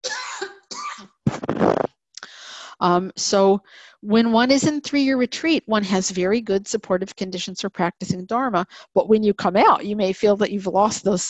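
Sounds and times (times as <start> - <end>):
loud harsh fit of coughing: 0.0 - 1.9
speech: 2.8 - 11.2.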